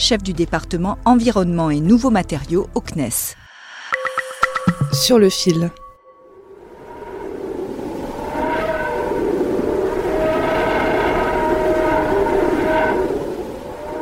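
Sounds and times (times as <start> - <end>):
speech: 0.1 - 3.4, 4.7 - 5.8
sustained whining tones of solar wind particle sonification: 3.5 - 14.0.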